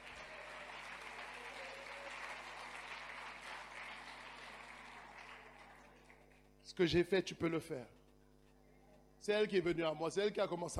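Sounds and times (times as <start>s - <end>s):
crowd applauding in praise of God: 0.0s - 6.6s
speech: 6.7s - 8.0s, 9.2s - 10.7s.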